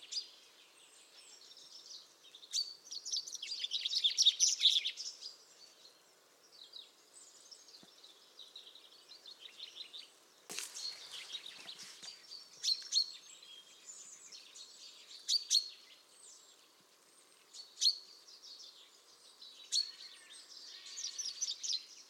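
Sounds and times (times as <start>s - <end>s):
Common chaffinch Fringilla coelebs song: 0.0s - 22.0s.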